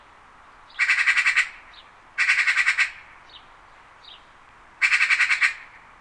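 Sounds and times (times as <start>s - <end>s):
faint calls: 0.7s - 5.9s
Eurasian magpie harsh rattling chatter: 0.8s - 1.6s, 2.2s - 3.0s, 4.8s - 5.7s.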